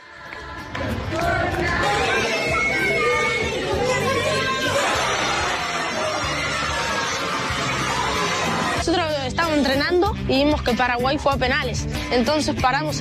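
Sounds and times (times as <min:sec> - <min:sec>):
children cheering and shouting: 0:00.0 - 0:08.8
speech: 0:00.8 - 0:01.8, 0:09.9 - 0:13.0.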